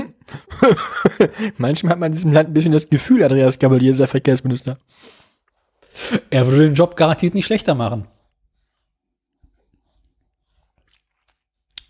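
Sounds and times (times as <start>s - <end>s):
speech: 0.6s - 5.2s, 6.0s - 8.1s
person chewing and eating a tomato: 9.7s - 11.8s
wet bites and mouth sounds: 10.0s - 11.8s.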